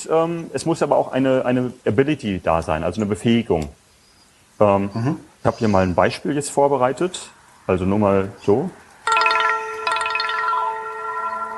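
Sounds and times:
speech: 0:00.0 - 0:03.8, 0:04.6 - 0:08.8
bright electronic phone ringtone: 0:09.1 - 0:11.5.

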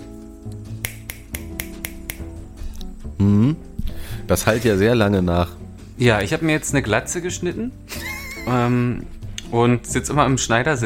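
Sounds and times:
finger snaps echoing in a reverberant brick room: 0:00.4 - 0:02.9
speech: 0:03.2 - 0:03.6, 0:04.3 - 0:10.8
laughter: 0:07.9 - 0:08.7.

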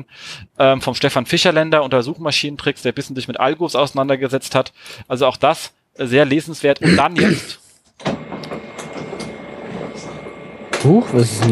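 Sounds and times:
speech: 0:00.0 - 0:08.2, 0:10.8 - 0:11.5
loud printer whirring: 0:08.0 - 0:11.5.

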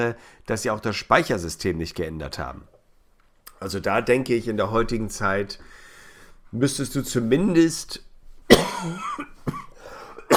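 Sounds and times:
speech: 0:00.0 - 0:02.7, 0:03.6 - 0:05.8, 0:06.5 - 0:09.6
throaty strained breathing: 0:05.6 - 0:06.5, 0:09.8 - 0:10.2
person coughing into a microphone: 0:08.5 - 0:10.3.

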